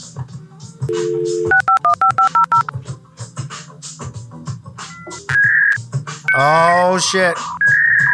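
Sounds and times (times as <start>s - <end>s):
speech: 0.9s - 1.7s, 6.4s - 7.5s
short high-pitched modem tone: 0.9s - 2.7s, 6.3s - 6.8s
steady dial tone: 0.9s - 2.7s
touch-tone dialing beeps: 0.9s - 2.7s, 5.1s - 6.6s.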